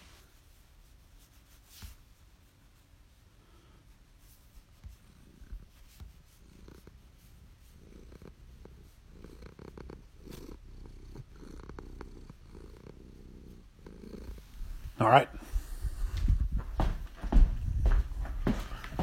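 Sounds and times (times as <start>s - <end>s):
cat purring: 4.7s - 18.9s
speech: 15.0s - 15.3s.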